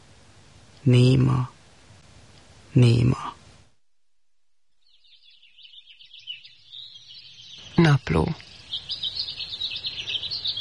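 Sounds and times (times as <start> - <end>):
speech: 0.8 - 1.6, 2.8 - 3.4, 7.8 - 9.0
blackbird calling with quick high chirps: 4.7 - 10.5.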